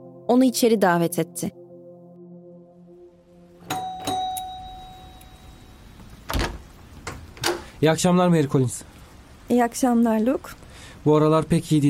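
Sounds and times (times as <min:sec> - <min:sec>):
speech: 0:00.3 - 0:01.6, 0:07.8 - 0:08.9, 0:09.5 - 0:11.8
doorbell chiming with a sustained ringing tone: 0:03.6 - 0:06.0.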